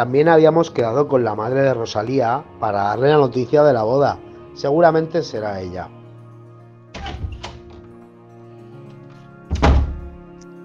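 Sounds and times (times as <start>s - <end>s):
speech: 0.0s - 6.0s
door opening: 6.9s - 8.0s, 9.5s - 10.2s
heavy thunk: 9.5s - 10.1s
solid knocks and thuds: 9.5s - 10.1s.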